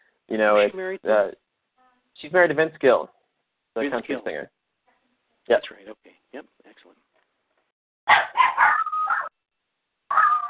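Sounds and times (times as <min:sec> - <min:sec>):
speech: 0:00.3 - 0:01.4, 0:02.2 - 0:03.2, 0:03.8 - 0:04.6, 0:05.5 - 0:07.0, 0:08.1 - 0:08.8
chihuahuas barking: 0:08.1 - 0:09.4, 0:10.1 - 0:10.4
small dog whiny howl: 0:08.2 - 0:09.3, 0:10.1 - 0:10.4.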